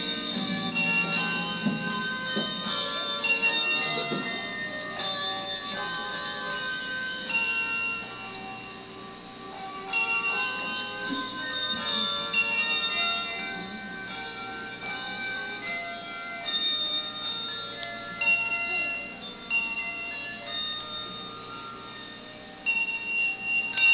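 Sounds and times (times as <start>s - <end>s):
handbells: 0.0s - 23.9s.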